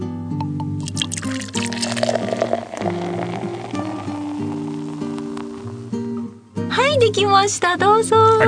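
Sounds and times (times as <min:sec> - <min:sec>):
beer glugging and fizzing as it is poured into glasses: 0:00.7 - 0:06.0
speech: 0:07.0 - 0:08.4.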